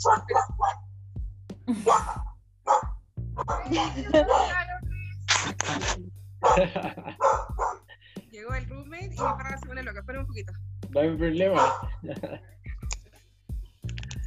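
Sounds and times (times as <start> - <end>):
speech: 0.0 - 0.5, 3.7 - 4.6, 10.4 - 12.5
dog barking in sharp loud bursts: 0.0 - 0.8, 1.8 - 4.6, 6.4 - 8.0, 9.2 - 9.6, 11.5 - 12.2
laughter: 1.7 - 2.2, 3.5 - 8.3, 11.4 - 13.3.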